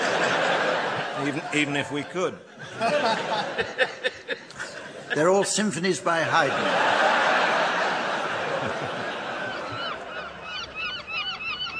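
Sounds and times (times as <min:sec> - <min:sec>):
laughter: 0:00.0 - 0:10.5
speech: 0:01.2 - 0:04.4, 0:05.1 - 0:07.1
seagulls squawking: 0:08.9 - 0:11.7.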